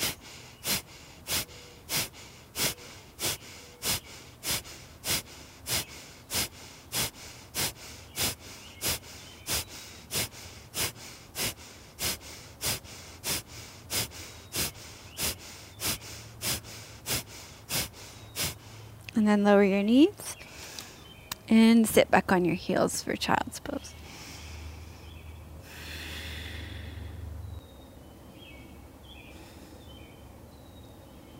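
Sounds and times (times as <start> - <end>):
Kapalabhati yoga breathing forceful nasal exhales: 0.0 - 18.9, 24.0 - 27.3
speech: 19.2 - 20.2, 21.5 - 23.8.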